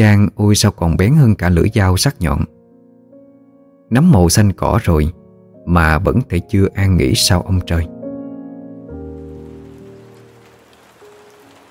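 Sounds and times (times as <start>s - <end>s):
speech: 0.0s - 2.6s, 3.9s - 8.0s
torrential rain pouring on a road: 9.2s - 11.6s.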